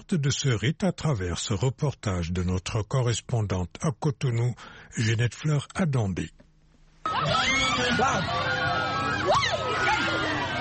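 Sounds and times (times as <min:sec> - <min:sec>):
speech: 0:00.0 - 0:06.4, 0:07.1 - 0:10.1
dense crowd shouting joyfully at a Peul community flagellation rite: 0:07.1 - 0:10.5.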